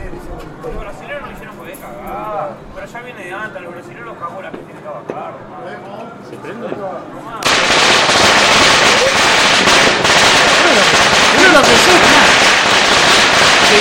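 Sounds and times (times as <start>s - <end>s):
speech: 1.7s - 7.8s
domestically made fireworks crackling and hissing: 7.4s - 13.8s.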